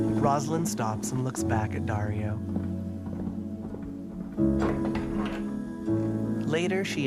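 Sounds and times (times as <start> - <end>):
speech: 0.0 - 2.7, 4.4 - 5.0, 6.5 - 7.0
clip-clop hoofbeats of a rider with two horses on a dirt path: 2.4 - 6.2.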